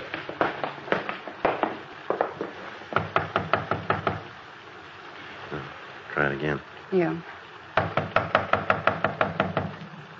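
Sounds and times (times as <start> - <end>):
police officers knocking on a door: 0.4 - 4.3, 7.8 - 9.8
speech: 6.3 - 7.4.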